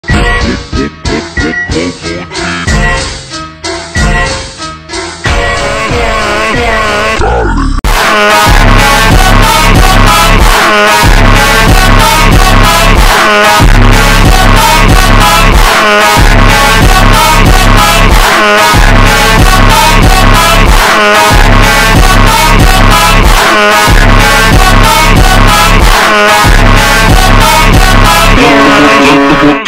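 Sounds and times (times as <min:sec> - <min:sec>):
ultra slowed beeper funk music: 0:00.0 - 0:29.6.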